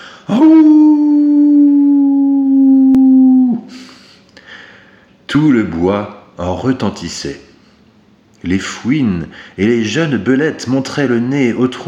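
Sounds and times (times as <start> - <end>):
speech: 0.3 - 0.6, 5.4 - 7.5, 8.4 - 11.8
wolf howling desperately: 0.3 - 3.7.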